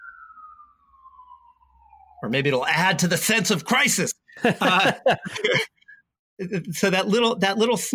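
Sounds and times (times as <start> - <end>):
emergency vehicle siren passing by with a wailing tone: 0.0 - 4.8
speech: 2.2 - 5.7, 6.4 - 7.9
laughter: 4.4 - 5.8.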